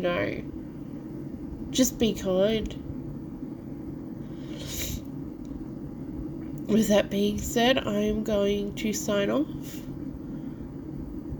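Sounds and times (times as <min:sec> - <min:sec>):
speech: 0:00.0 - 0:00.6, 0:01.7 - 0:02.8, 0:06.7 - 0:09.9
low rumble: 0:00.0 - 0:11.3
person sniffling: 0:04.4 - 0:05.0.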